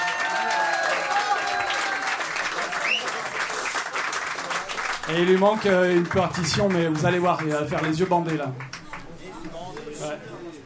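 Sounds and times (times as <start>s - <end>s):
cheers: 0.0s - 5.1s
audience applause: 0.0s - 10.1s
whistles: 2.8s - 3.3s
speech: 5.1s - 8.7s.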